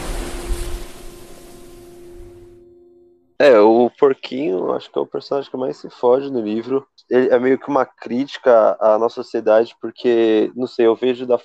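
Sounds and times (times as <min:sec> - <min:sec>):
sea waves surging over rock with a hissing wash: 0:00.0 - 0:02.0
speech: 0:03.4 - 0:11.4.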